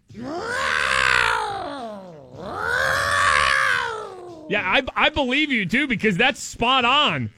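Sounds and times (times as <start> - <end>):
person imitating caterwauling cats: 0.0 - 4.8
speech: 4.5 - 7.3.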